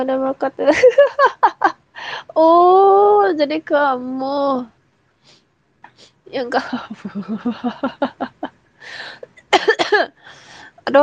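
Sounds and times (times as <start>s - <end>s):
speech: 0.0s - 5.4s, 6.0s - 11.0s
laughter: 6.9s - 8.5s
raspy breath in: 8.8s - 9.3s, 10.2s - 10.8s
ill person coughing dry and harsh coughs: 9.3s - 10.2s.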